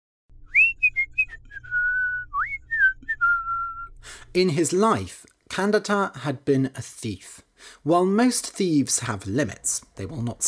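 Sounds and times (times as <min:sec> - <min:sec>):
person whistling a cheerful lilting tune: 0:00.4 - 0:04.0
speech: 0:04.4 - 0:10.4.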